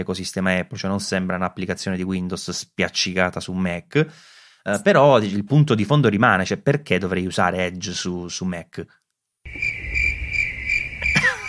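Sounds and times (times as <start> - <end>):
speech: 0.0 - 9.8
crickets chirping: 9.5 - 11.4.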